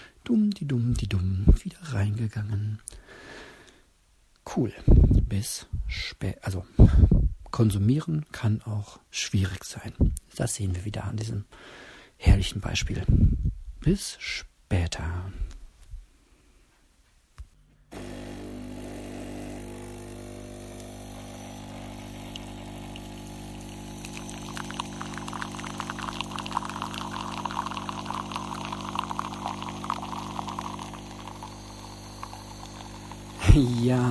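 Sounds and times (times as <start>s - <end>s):
speech: 0.3s - 3.5s, 4.5s - 15.6s, 33.6s - 34.0s
coffee machine humming: 17.9s - 34.0s.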